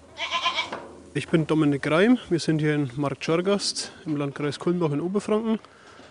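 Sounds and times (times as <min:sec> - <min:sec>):
dairy goat bleating in front of a goat barn in Marktschorgast, Germany: 0:00.0 - 0:00.8
soft barn noise on a dairy-goat farm: 0:00.0 - 0:05.5
speech: 0:01.2 - 0:05.8.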